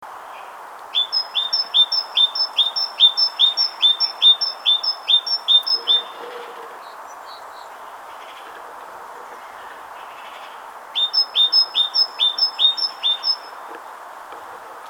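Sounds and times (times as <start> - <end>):
great tit Parus major singing: 0.9 - 8.4, 9.4 - 13.6.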